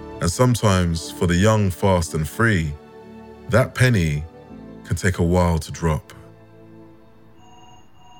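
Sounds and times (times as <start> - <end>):
speech: 0.2 - 2.8, 3.5 - 4.3, 4.9 - 6.2
wall-mounted telephone ringing with electronic trill: 7.2 - 8.1.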